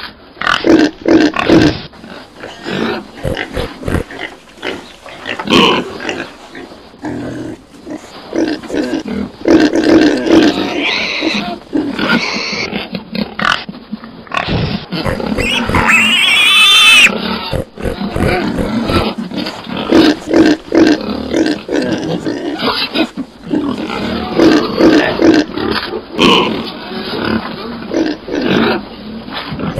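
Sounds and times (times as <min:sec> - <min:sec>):
pig grunting: 0:00.0 - 0:13.7, 0:14.3 - 0:29.7.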